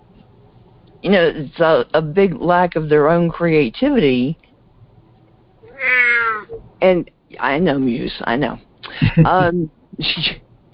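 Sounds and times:
speech: 1.0s - 4.5s, 6.8s - 10.4s
cat meowing: 5.6s - 6.5s
laughter: 8.9s - 9.6s.

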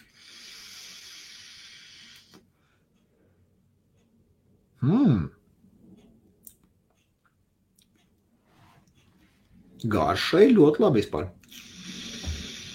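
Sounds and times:
steady airy draw on a rainbow-coloured vape pod: 0.0s - 2.4s, 11.5s - 12.7s
forceful breathy exhale of vapor: 0.0s - 2.8s, 11.6s - 12.7s
speech: 9.8s - 11.4s.

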